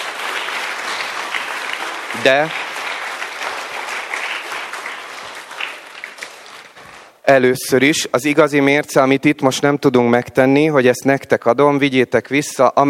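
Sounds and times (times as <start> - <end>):
sizable audience applauding: 0.0 - 7.2
speech: 2.2 - 2.6, 7.3 - 12.8.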